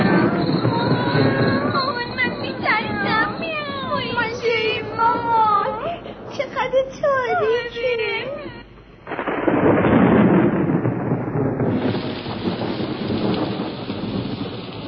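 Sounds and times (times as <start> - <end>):
wavering wailing voice: 0.0 - 8.8
heavy steady rain: 0.0 - 14.8
rolling crash of thunder in a storm: 0.0 - 14.8.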